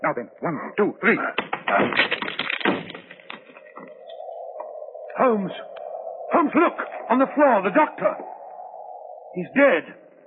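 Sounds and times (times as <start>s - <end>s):
speech: 0.0s - 2.4s, 5.2s - 5.8s, 6.4s - 8.4s, 9.3s - 10.0s
locked door to a room being forced open: 1.4s - 3.3s
crashing and splintering impacts of a door being broken in: 1.5s - 3.5s.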